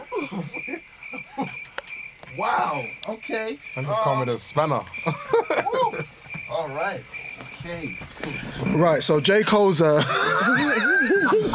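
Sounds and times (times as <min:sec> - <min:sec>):
laughter: 0:00.0 - 0:01.8, 0:04.9 - 0:06.8, 0:08.0 - 0:11.5
indistinct voices murmuring: 0:00.0 - 0:11.5
steady high-pitched cricket chirp: 0:00.0 - 0:11.5
speech: 0:00.3 - 0:00.7, 0:02.4 - 0:11.5.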